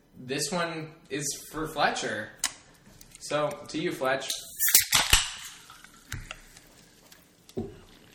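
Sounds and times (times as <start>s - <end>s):
speech: 0.2s - 2.4s, 3.2s - 4.8s
can of water cracked open with a pop and hiss: 4.3s - 5.6s.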